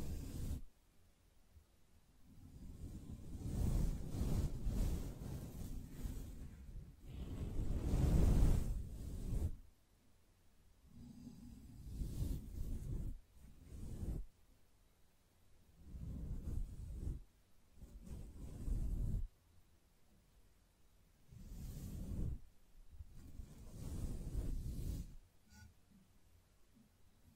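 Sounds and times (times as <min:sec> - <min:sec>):
gentle brushing in soft separate strokes: 0:00.0 - 0:09.9, 0:10.7 - 0:27.3.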